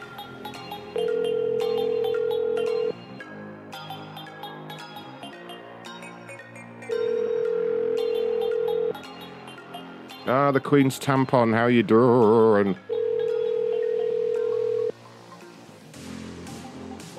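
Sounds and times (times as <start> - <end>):
continuous music: 0.0 - 17.1
telephone ringing with two long steady electronic tones: 0.6 - 3.0, 6.9 - 9.4, 12.8 - 14.9
speech: 10.3 - 12.9.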